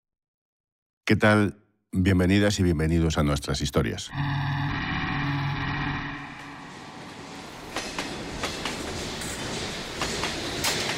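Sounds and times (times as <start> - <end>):
speech: 1.1 - 4.6
droning mechanical tone: 4.1 - 7.2
train rolling along the rails with a steady rumble: 5.7 - 10.9
rhythmic clickety-clack beats of train wheels: 7.6 - 10.9.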